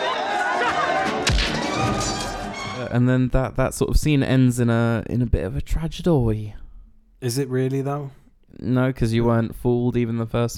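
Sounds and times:
dense busy movie soundtrack bed: 0.0s - 3.0s
movie fight punch impact: 1.2s - 2.1s
speech: 2.9s - 6.6s, 7.2s - 10.5s.

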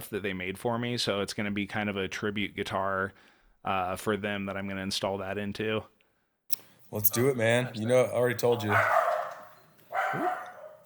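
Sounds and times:
speech: 0.1s - 9.0s, 10.1s - 10.4s
dog barking: 8.4s - 10.8s.

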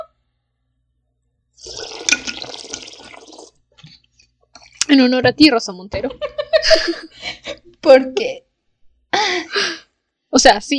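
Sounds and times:
person taking a sip of water: 1.6s - 3.6s
speech: 4.9s - 8.5s, 10.3s - 10.7s.

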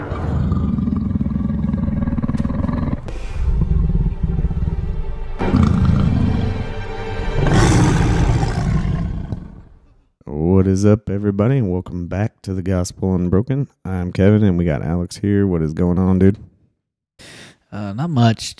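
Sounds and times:
lion roaring: 0.0s - 9.9s
speech: 10.8s - 16.5s, 17.2s - 18.5s.

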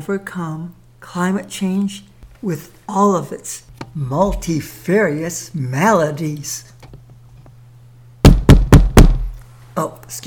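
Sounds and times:
speech: 0.0s - 6.7s, 9.8s - 10.2s
faint low hum: 0.0s - 10.2s
firm knocks on a door: 8.2s - 9.4s.

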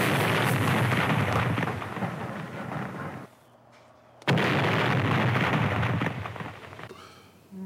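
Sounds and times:
movie special effect explosions: 0.0s - 3.3s, 4.3s - 6.9s.

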